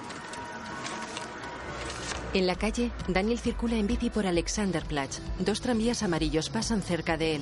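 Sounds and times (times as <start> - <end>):
office printer whirring while making copies of a drawing: 0.0 - 2.4
speech: 2.3 - 7.4.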